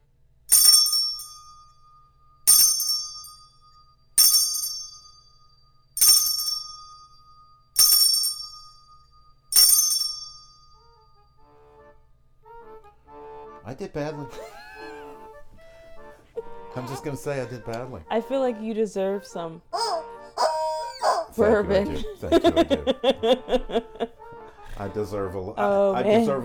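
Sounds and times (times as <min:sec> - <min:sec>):
bright metallic bell ringing: 0:00.5 - 0:11.4
speech: 0:13.7 - 0:14.6, 0:16.7 - 0:19.7, 0:21.4 - 0:26.4
laughter: 0:14.1 - 0:18.3, 0:21.1 - 0:25.4.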